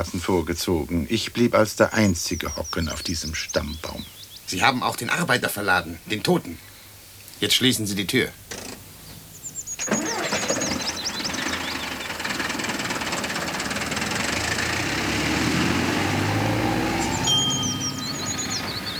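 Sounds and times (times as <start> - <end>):
speech: 0.0 - 6.7, 7.4 - 8.7
vehicle engine starting and revving as it drives off to the hospital: 9.7 - 18.9.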